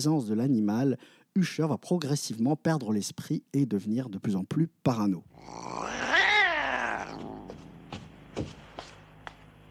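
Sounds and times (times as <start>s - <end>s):
speech: 0.0s - 6.0s
cat yowling in pain: 5.4s - 7.5s.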